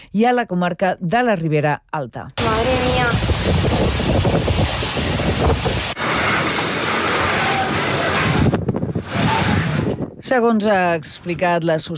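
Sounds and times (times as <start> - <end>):
speech: 0.1 - 6.5, 10.2 - 11.9
loud roaring storm wind buffeting the microphone: 2.4 - 11.9.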